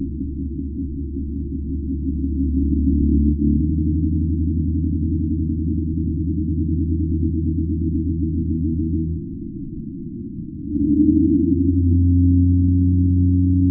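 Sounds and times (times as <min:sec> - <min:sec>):
pygmy blue whale call: 0:00.0 - 0:13.6.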